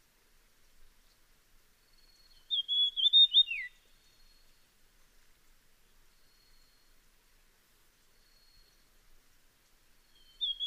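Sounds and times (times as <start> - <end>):
Dusky fulvetta high whistle: 2.4 - 4.4, 10.1 - 10.6.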